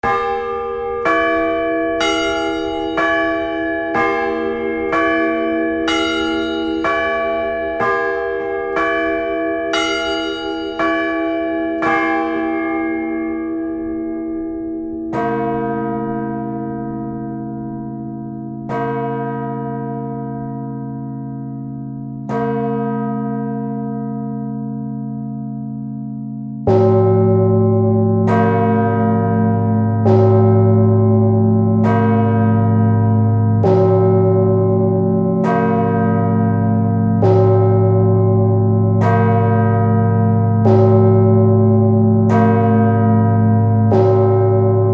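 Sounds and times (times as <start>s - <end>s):
large church bell ringing: 0.0s - 44.9s.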